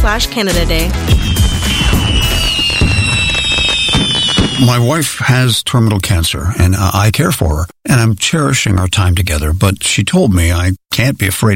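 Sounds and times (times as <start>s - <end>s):
speech: 0.0s - 1.9s, 4.6s - 11.5s
fireworks bursting in a crackling barrage: 1.0s - 5.0s
high whistling fireworks streaks: 1.0s - 5.0s
low fireworks booms: 1.1s - 5.1s.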